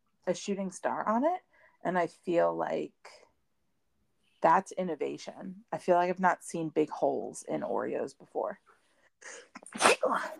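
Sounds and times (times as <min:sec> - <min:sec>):
speech: 0:00.3 - 0:03.2, 0:04.4 - 0:10.3
person sneezing: 0:09.5 - 0:10.3.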